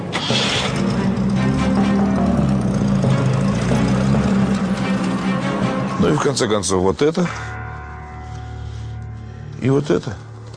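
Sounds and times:
police car engine running as it pulls away: 0:00.1 - 0:06.0
speech: 0:00.3 - 0:00.6, 0:06.2 - 0:07.6, 0:09.6 - 0:10.3.

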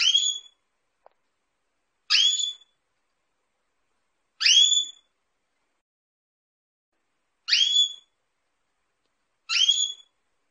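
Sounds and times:
female Belgian canary in breeding condition giving upswept whistled chirps: 0:00.0 - 0:00.6, 0:02.1 - 0:02.8, 0:04.4 - 0:05.1, 0:07.5 - 0:08.1, 0:09.5 - 0:10.1.

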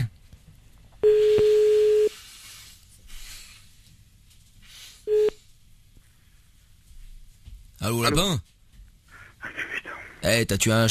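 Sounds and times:
faint noise: 0:00.0 - 0:10.8
telephone line tone while calling someone back: 0:01.0 - 0:02.2, 0:05.1 - 0:05.4
speech: 0:07.9 - 0:08.5, 0:10.2 - 0:10.8.

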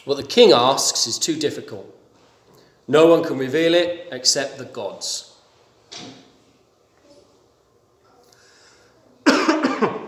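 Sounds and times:
speech: 0:00.0 - 0:02.0, 0:02.9 - 0:05.3, 0:05.9 - 0:06.2
loud harsh cough: 0:09.2 - 0:10.0.

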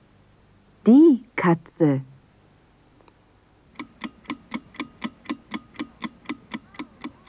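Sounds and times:
speech: 0:00.8 - 0:02.1
clock ticking: 0:03.7 - 0:07.2.

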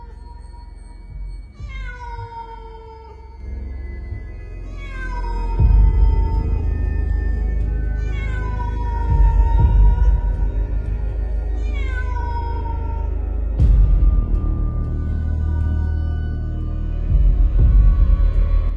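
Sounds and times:
low rumble: 0:00.0 - 0:18.7
stray cat wailing mournfully in a garden: 0:01.5 - 0:03.4, 0:04.6 - 0:07.1, 0:07.8 - 0:10.6, 0:11.3 - 0:13.6.

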